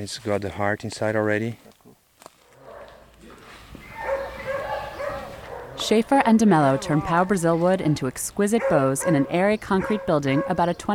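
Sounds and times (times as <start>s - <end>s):
speech: 0.0s - 1.7s, 5.8s - 10.9s
dogs barking and yipping: 2.6s - 3.1s, 3.8s - 5.9s, 6.6s - 7.4s, 8.5s - 10.9s.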